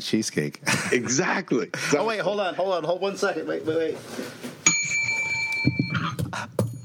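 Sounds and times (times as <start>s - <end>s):
speech: 0.0s - 4.5s
broken bell ringing: 4.6s - 6.8s.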